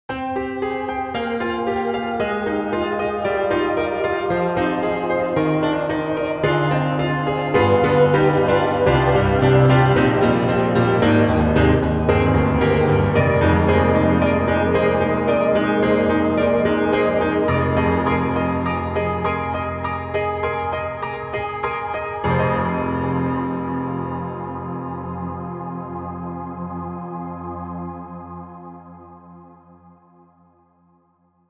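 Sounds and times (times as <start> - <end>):
distant piano stack: 0.1 - 29.0.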